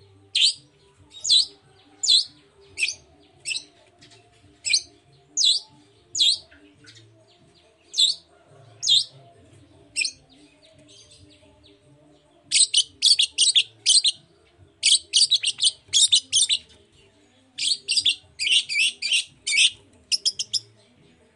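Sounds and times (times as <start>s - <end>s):
Long-tailed shrike morning song of fast scratchy chattering bursts: 0.3s - 7.1s, 7.9s - 9.1s, 9.9s - 10.3s, 12.5s - 14.2s, 14.8s - 16.8s, 17.6s - 20.8s.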